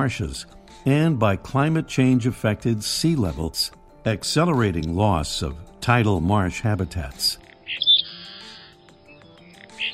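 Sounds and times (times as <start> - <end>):
speech: 0.0 - 7.4
Seaside Sparrow singing: 7.4 - 9.9.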